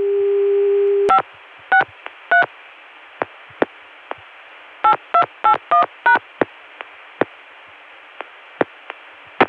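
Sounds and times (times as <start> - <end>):
telephone dial tone: 0.0 - 1.2
faint telephone line hiss: 0.8 - 9.4.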